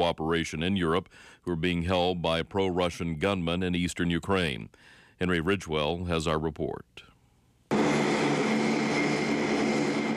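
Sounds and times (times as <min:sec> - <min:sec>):
speech: 0:00.0 - 0:07.1
large military transport plane engines roaring: 0:07.7 - 0:10.1.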